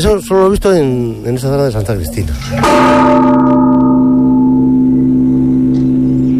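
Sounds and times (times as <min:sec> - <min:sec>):
speech: 0:00.0 - 0:03.8
large church bell struck: 0:02.4 - 0:06.3.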